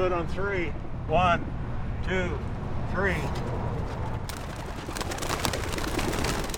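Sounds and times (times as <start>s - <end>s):
speech: 0.0s - 4.0s
flock of homing pigeons wings flapping: 4.3s - 6.5s.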